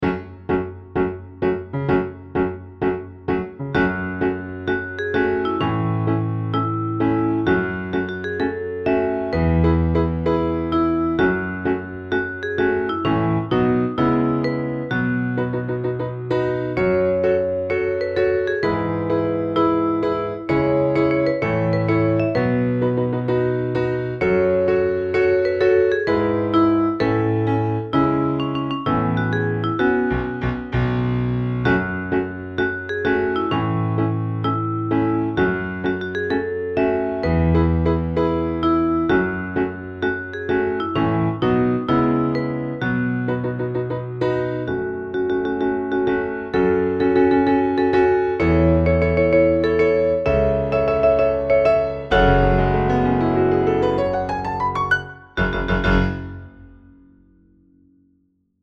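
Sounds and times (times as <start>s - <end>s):
piano Vocaline: 0.0s - 58.3s.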